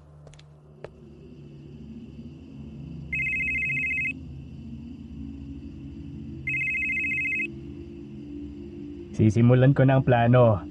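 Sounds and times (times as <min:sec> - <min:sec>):
low rumbling background: 0:00.0 - 0:10.7
mobile phone ringing: 0:03.1 - 0:04.2, 0:06.5 - 0:07.5
speech: 0:09.2 - 0:10.7.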